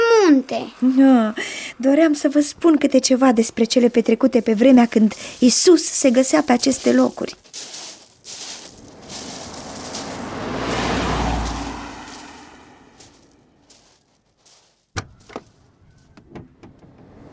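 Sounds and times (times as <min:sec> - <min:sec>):
speech: 0:00.4 - 0:07.7
whooshing rumble: 0:08.7 - 0:13.1.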